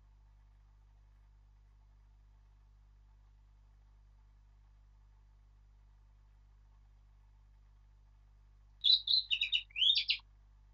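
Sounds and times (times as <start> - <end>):
Eurasian blackcap Sylvia atricapilla singing: 8.8 - 10.2.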